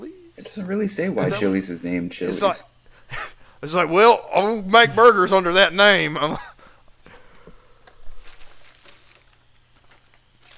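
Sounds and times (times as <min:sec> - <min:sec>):
low steady hum: 0:00.0 - 0:10.5
speech: 0:00.6 - 0:02.7, 0:03.6 - 0:06.5
crisp plastic-like crinkling and rustling: 0:07.2 - 0:10.5
bag contents spilling from a desk onto the floor: 0:08.0 - 0:10.5.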